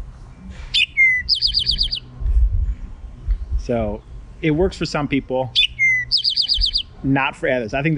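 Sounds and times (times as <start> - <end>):
low rumble: 0.0 - 7.9
bird song with whistled notes and trill: 0.2 - 7.2
speech: 3.7 - 5.6, 7.0 - 7.9.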